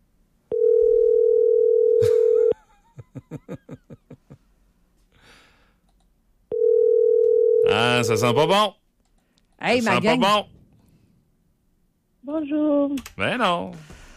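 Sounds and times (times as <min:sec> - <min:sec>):
long steady electronic phone line ringing tone: 0:00.5 - 0:02.6, 0:06.5 - 0:08.3
person chuckling rhythmically: 0:02.0 - 0:04.4
speech: 0:07.8 - 0:08.8, 0:09.6 - 0:10.5, 0:12.3 - 0:13.9.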